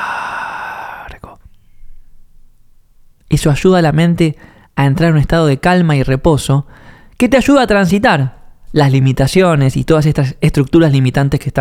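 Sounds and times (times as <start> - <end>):
long airy exhale during a calming breathing exercise: 0.0 - 1.4
speech: 3.3 - 11.5.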